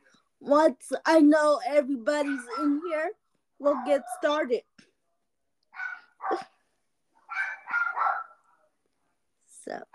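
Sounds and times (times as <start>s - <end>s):
speech: 0.4s - 4.8s, 6.2s - 6.5s, 9.7s - 9.9s
dogs barking: 2.2s - 3.0s, 3.6s - 4.5s, 5.7s - 6.5s, 7.2s - 8.5s.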